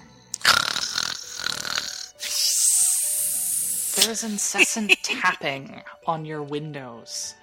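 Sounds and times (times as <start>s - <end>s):
person imitating snoring: 0.0s - 4.8s
laughter: 4.0s - 5.6s
speech: 4.0s - 7.4s.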